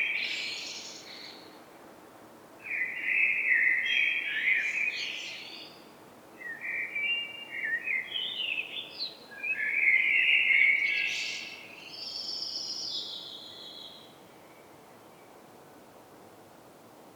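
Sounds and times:
Turdus merula common blackbird song with warbled and fluting notes: 2.6 - 15.3.

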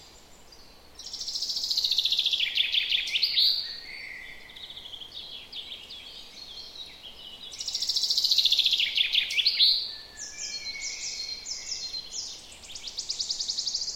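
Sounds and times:
common chaffinch Fringilla coelebs song with trilled phrases: 0.0 - 13.9.

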